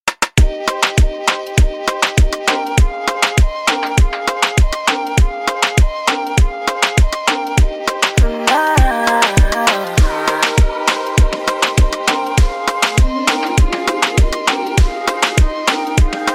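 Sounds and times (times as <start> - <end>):
afrobeat reggae music: 0.1 - 16.3.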